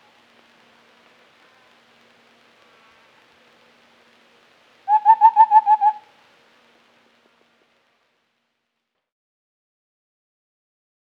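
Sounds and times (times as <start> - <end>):
white-browed scimitar babbler soft hollow hoots: 4.9 - 6.0.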